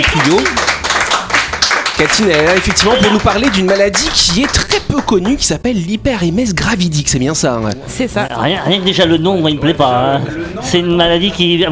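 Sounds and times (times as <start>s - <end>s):
speech: 0.0s - 0.6s, 2.0s - 11.6s
audience applauding a guest: 0.0s - 5.5s.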